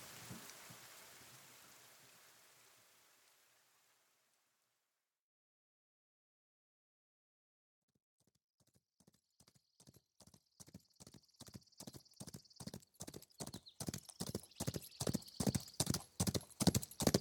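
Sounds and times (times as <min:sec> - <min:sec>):
horses galloping with clip-clopping hooves: 0:09.0 - 0:17.1.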